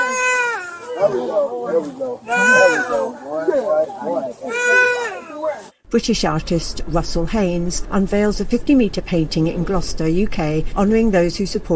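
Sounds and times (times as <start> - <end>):
infant crying after resuming breathing: 0.0 - 1.1, 2.2 - 3.1, 4.4 - 5.6
speech: 1.0 - 11.7.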